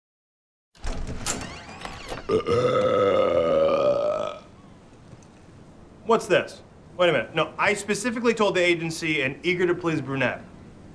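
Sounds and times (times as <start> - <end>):
house sliding door rolling open: 0.8 - 2.4
speech: 2.3 - 3.3, 6.1 - 10.5.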